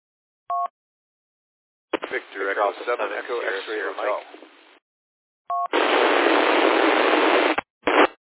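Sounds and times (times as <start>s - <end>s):
harsh radio static from doubled transmissions on a radio net: 1.9s - 4.4s, 5.7s - 8.2s.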